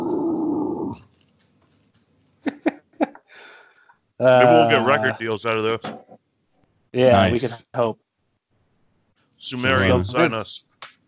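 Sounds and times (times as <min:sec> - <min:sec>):
loud low rough growl: 0:00.0 - 0:01.1
speech: 0:04.2 - 0:06.0, 0:06.9 - 0:08.0, 0:09.4 - 0:10.7.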